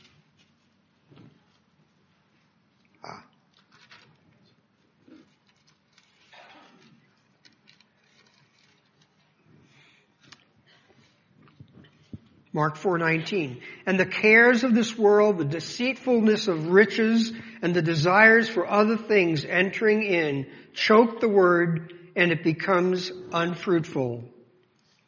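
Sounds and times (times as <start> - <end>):
thin paper pages of a Bible being flipped: 0.0 - 2.9, 3.5 - 12.4
speech: 12.6 - 24.3.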